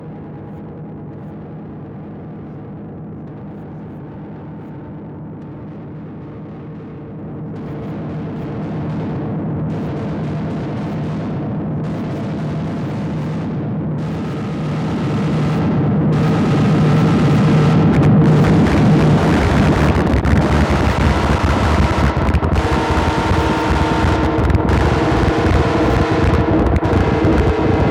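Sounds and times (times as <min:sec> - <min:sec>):
crunchy synth: 0:06.4 - 0:27.8.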